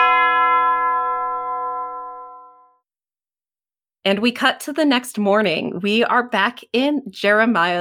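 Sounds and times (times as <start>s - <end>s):
single church bell ringing: 0.0s - 2.8s
speech: 4.1s - 7.7s.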